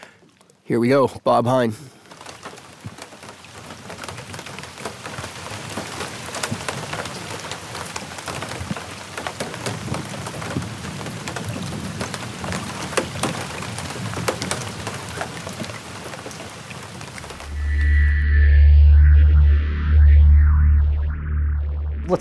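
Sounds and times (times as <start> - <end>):
rain falling on a river in northern Canada: 0.0 - 17.6
speech: 0.7 - 2.0
deep rumbling drone with shifting tones: 17.3 - 22.1.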